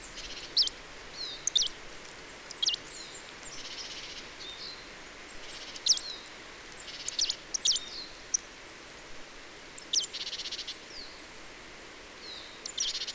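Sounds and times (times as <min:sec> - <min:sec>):
Marsh Tit Poecile palustris calls: 0:00.0 - 0:04.3, 0:06.8 - 0:08.4
steady background noise: 0:00.0 - 0:13.1.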